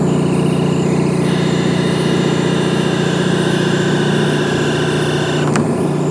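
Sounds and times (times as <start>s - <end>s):
Auxiliary Telescope dome closing at Paranal: 0.1s - 5.9s.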